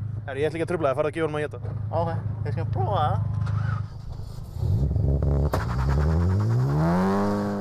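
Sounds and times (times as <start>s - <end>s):
speech: 0.3s - 3.8s
heavily modified car engine revving during a burnout at a car-days motorsport event: 1.6s - 7.5s.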